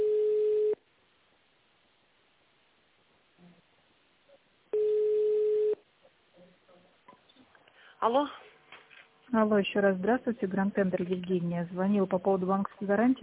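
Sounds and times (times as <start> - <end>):
telephone ringback tone while a call is transferred to an operator: 0.0 - 0.8, 4.8 - 5.8
speech: 8.0 - 8.4, 9.3 - 13.2.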